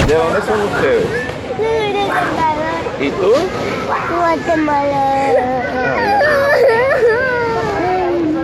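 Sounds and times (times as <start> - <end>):
speech: 0.1 - 7.1
child crying: 5.2 - 8.3.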